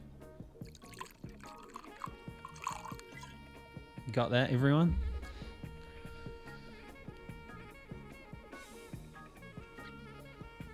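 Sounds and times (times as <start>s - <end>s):
whisky pouring into a glass: 0.6s - 3.3s
speech: 4.1s - 5.1s.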